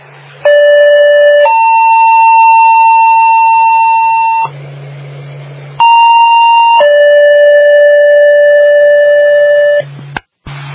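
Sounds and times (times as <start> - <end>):
fire station siren during a radio siren check: 0.4 - 4.5, 5.8 - 9.8.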